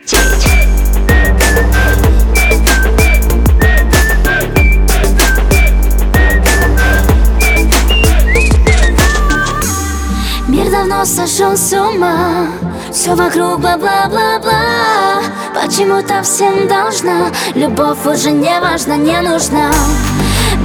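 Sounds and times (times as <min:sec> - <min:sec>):
person whistling a tune: 0:00.0 - 0:09.9
loud music with a steady, punchy beat: 0:00.0 - 0:10.2, 0:19.8 - 0:20.6
speech: 0:11.4 - 0:20.6.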